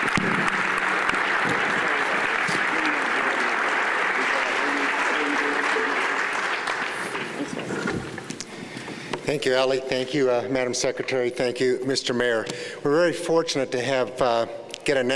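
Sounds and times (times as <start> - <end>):
room full of people applauding: 0.0 - 8.7
speech: 9.3 - 15.1.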